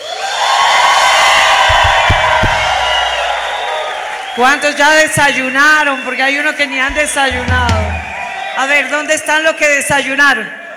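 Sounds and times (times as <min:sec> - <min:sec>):
audience shouting and cheering for joy: 0:00.0 - 0:10.7
dull thumps: 0:01.7 - 0:03.6, 0:06.9 - 0:08.3
speech: 0:04.4 - 0:07.8, 0:08.6 - 0:10.6.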